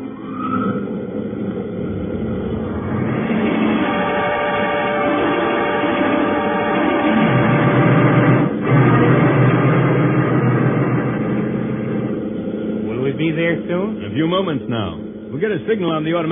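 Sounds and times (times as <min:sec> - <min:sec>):
spaceship solar drive engine cutting in: 0:00.0 - 0:16.2
speech: 0:14.4 - 0:16.2.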